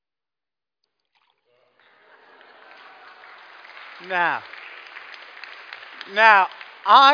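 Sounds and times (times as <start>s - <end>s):
water pouring into a jug: 1.0s - 1.6s
laughter: 1.8s - 4.4s
speech: 4.0s - 4.6s, 6.1s - 7.1s.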